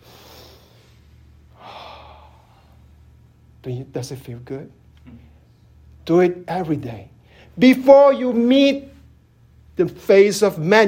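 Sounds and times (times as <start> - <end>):
deep breath: 0.0 - 3.0
low steady hum: 0.0 - 10.8
speech: 3.6 - 5.3, 6.1 - 8.9, 9.8 - 10.8.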